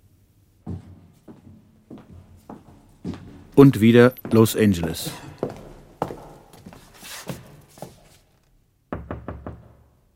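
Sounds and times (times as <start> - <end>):
speech: 3.6 - 5.2
knocking on a thick oak door: 8.9 - 9.9.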